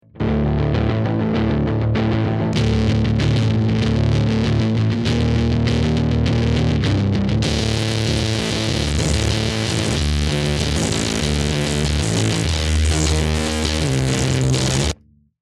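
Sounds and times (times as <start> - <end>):
saw bass synth: 0.1 - 15.0.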